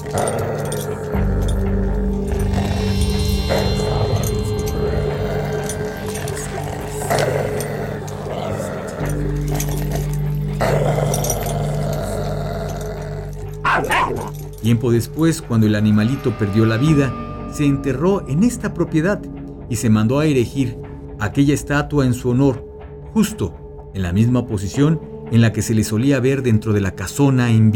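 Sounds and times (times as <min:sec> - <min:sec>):
dog growling: 0:00.0 - 0:14.7
dog barking: 0:13.6 - 0:14.4
speech: 0:14.7 - 0:27.7.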